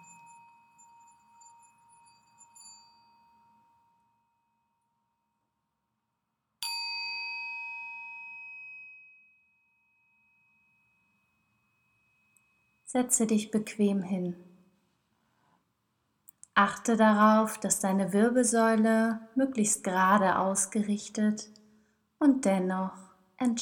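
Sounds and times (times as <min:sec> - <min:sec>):
singing bowl struck and ringing during a morning meditation: 0:00.0 - 0:04.2, 0:06.6 - 0:12.9
speech: 0:12.9 - 0:14.5, 0:16.6 - 0:21.6, 0:22.2 - 0:23.6.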